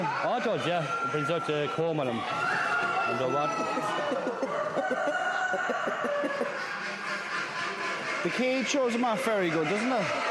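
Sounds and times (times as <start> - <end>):
caged show chickens clucking: 0.0 - 10.3
laughter: 0.0 - 10.3
rooster crowing in a cage at a poultry show: 0.1 - 6.6
speech: 0.4 - 7.1, 8.2 - 10.3
steady hum: 3.5 - 10.3.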